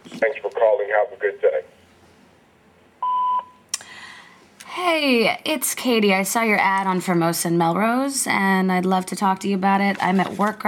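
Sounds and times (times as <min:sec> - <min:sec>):
speech: 0:00.2 - 0:01.8, 0:04.8 - 0:10.6
answering machine beep: 0:03.0 - 0:03.6.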